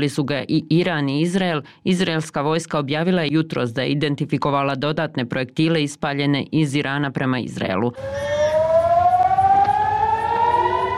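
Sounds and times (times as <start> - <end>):
speech: 0.0 - 8.4
rocket attack warning siren wailing at the port of Haifa in northern Israel: 8.0 - 10.9.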